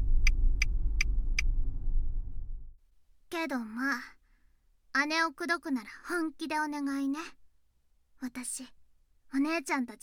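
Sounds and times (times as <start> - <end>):
car engine rumble: 0.0 - 2.8
speech: 3.4 - 4.2, 5.0 - 7.4, 8.2 - 10.0.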